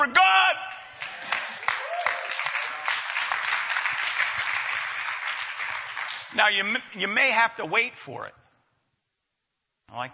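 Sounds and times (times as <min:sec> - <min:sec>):
one person clapping hands: 0:00.7 - 0:06.4
speech: 0:06.4 - 0:08.4, 0:09.9 - 0:10.1.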